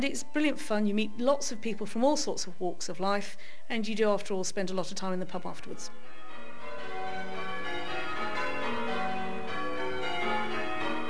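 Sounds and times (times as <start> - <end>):
speech: 0.0 - 6.2
church bells pealing from a tower: 5.4 - 11.0.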